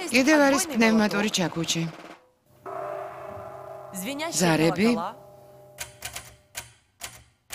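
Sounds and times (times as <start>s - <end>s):
speech: 0.1s - 2.1s, 3.9s - 5.2s
typewriter keys clacking: 5.8s - 7.5s.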